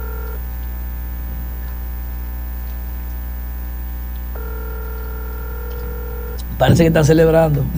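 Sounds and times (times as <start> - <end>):
two-pitch telephone ringback tone from an outgoing call: 0.0 - 0.4, 4.3 - 6.4
constant low electrical hum: 0.0 - 7.7
speech: 6.6 - 7.7.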